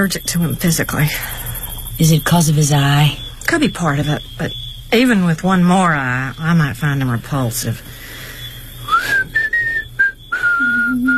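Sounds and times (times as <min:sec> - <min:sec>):
speech: 0:00.0 - 0:08.0
person whistling: 0:08.8 - 0:11.1.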